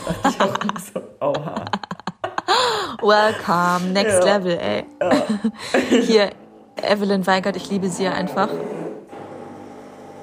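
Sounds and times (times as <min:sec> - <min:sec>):
laughter: 0:00.0 - 0:03.6, 0:05.0 - 0:06.4
speech: 0:00.1 - 0:01.9, 0:03.0 - 0:08.8
coffee machine running with buzzing mechanical whir and low hum: 0:07.7 - 0:10.2.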